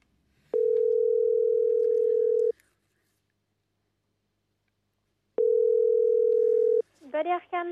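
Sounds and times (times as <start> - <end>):
telephone ringback tone while calling a pet shop: 0.5 - 2.5, 5.4 - 6.8
speech: 7.1 - 7.7.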